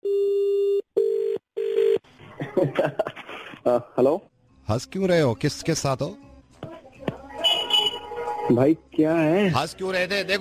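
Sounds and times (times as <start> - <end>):
telephone ringing on the line: 0.1 - 2.0
laughter: 2.2 - 3.6
speech: 2.6 - 6.2, 8.5 - 10.3.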